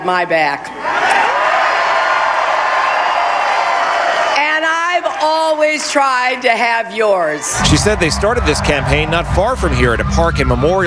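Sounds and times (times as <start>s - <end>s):
speech: 0.0s - 1.0s, 5.2s - 10.8s
large crowd of supporters roaring and cheering: 0.8s - 5.6s, 7.3s - 10.8s.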